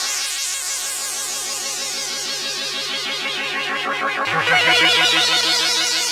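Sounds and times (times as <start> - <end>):
ambient music: 1.8 - 6.0.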